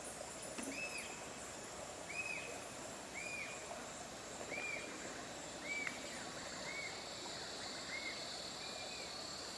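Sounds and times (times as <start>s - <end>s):
steady hiss of insects: 0.0s - 9.5s
Rufous-tailed jacamar song of clear arched whistled notes: 0.7s - 1.2s, 2.1s - 2.5s, 3.1s - 3.6s, 4.5s - 4.9s, 5.6s - 7.0s.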